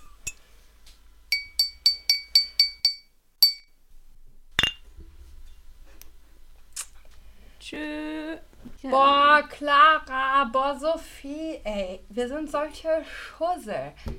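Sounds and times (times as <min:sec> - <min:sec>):
glasses and a bottle clinking in a toast: 0:01.3 - 0:03.7, 0:04.6 - 0:04.9
speech: 0:07.7 - 0:08.1, 0:08.8 - 0:14.1.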